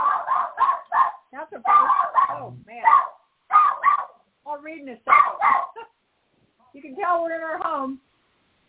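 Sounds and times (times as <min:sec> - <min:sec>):
dog barking at the door of a home with whiny yips: 0:00.0 - 0:04.2, 0:05.1 - 0:05.9
speech: 0:04.8 - 0:05.6, 0:06.8 - 0:08.0.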